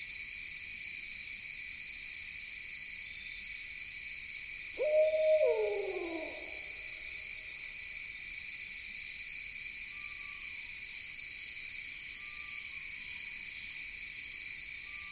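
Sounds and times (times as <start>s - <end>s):
distant eastern screech owl whinnying trill: 4.8s - 6.8s.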